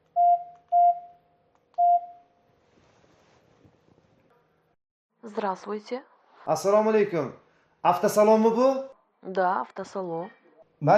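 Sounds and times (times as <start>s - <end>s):
electronic telephone keypad beeps: 0.2s - 1.1s
speech: 5.3s - 10.9s.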